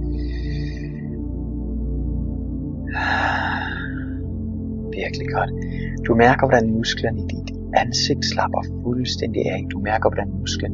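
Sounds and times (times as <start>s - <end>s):
deep breaths drawn into the belly during a guided relaxation exercise: 0.0s - 1.2s, 2.9s - 4.3s, 5.6s - 6.0s
steady low humming musical drone: 0.0s - 10.7s
speech: 5.0s - 10.7s.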